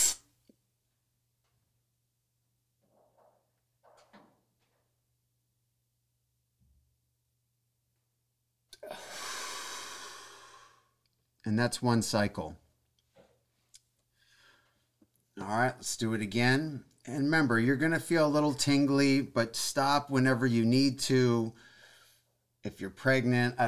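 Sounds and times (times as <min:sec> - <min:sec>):
person breathing deeply in a breathing exercise: 0:08.8 - 0:11.0, 0:21.5 - 0:22.3
speech: 0:11.5 - 0:12.6, 0:15.5 - 0:21.7, 0:22.6 - 0:23.6.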